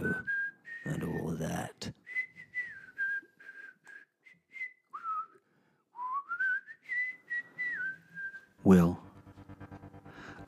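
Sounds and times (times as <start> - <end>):
person whistling a bright bouncy melody: 0.0 - 1.2, 2.0 - 9.0
speech: 8.7 - 9.0.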